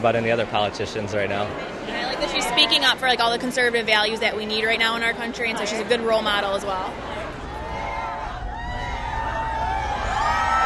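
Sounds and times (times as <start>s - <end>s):
speech: 0.0s - 7.1s
large outdoor crowd of admirers cheering and shouting outside a mall: 6.8s - 10.6s
people in an outdoor crowd whooping: 7.5s - 10.6s.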